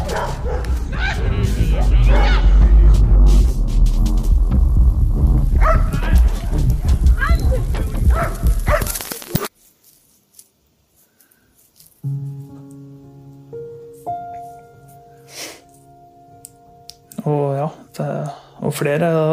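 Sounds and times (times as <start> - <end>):
dogs barking: 0.0 - 2.6, 5.6 - 6.1, 8.0 - 9.0
deep rumbling commotion: 0.0 - 8.9
indistinct voices: 0.0 - 9.5
speech: 18.8 - 19.3.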